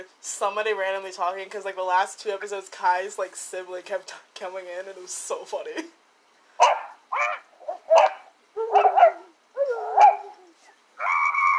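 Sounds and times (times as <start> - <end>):
speech: 0.0 - 6.0
dog barking and howling yelps: 6.6 - 10.3.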